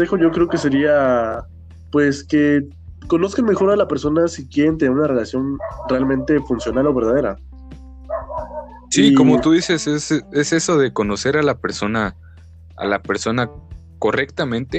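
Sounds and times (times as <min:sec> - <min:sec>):
neighbor's dog barking: 0:00.0 - 0:00.9, 0:05.5 - 0:06.8, 0:08.1 - 0:09.8
speech: 0:00.0 - 0:07.5, 0:08.9 - 0:14.7.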